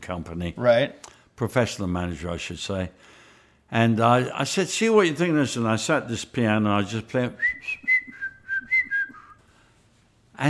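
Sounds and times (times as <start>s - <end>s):
speech: 0.0s - 7.9s
person whistling a melody: 7.4s - 9.4s.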